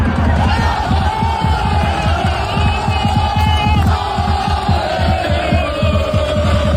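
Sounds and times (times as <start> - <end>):
roaring crowd of football supporters shouting and chanting: 0.0 - 6.7
steady rhythmic low beats: 0.0 - 6.7.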